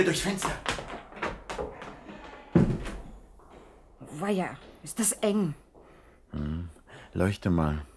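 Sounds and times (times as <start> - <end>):
speech: 0.0 - 0.7, 4.2 - 5.6, 6.3 - 7.9
pantry door opening: 0.8 - 3.3
heavy thud: 2.5 - 3.2.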